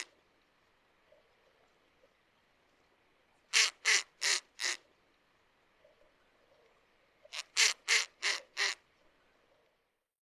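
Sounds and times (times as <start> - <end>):
captive snowy owl giving harsh rasping notes at a zoo: 3.5 - 4.8, 7.2 - 8.8.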